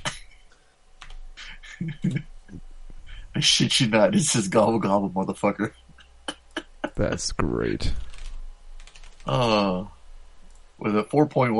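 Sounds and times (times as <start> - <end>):
speech: 1.8 - 2.6, 3.4 - 5.8, 7.0 - 8.1, 9.3 - 9.9, 10.8 - 11.5
typing on a computer keyboard: 8.0 - 9.3.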